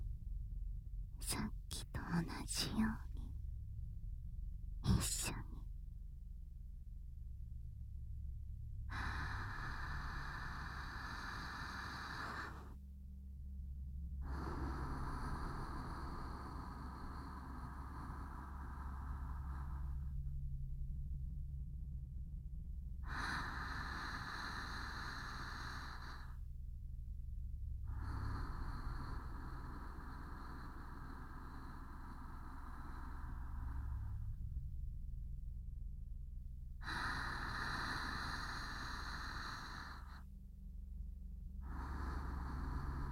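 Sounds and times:
steady low hum: 0.0s - 43.1s
speech: 1.3s - 3.1s
slow deep breathing during a guided exercise: 8.8s - 13.0s, 14.2s - 20.9s, 23.0s - 43.1s.

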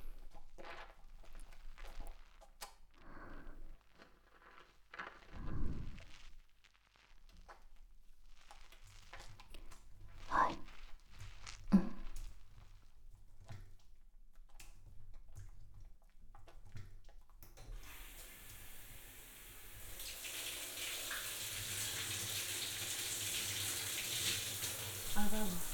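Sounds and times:
running water rinsing off foam: 0.0s - 6.4s, 8.7s - 12.6s, 17.8s - 25.7s
speech: 25.2s - 25.7s.

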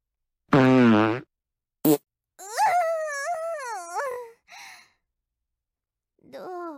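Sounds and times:
loud buzzy fart and long squeaky fart: 0.5s - 2.0s.

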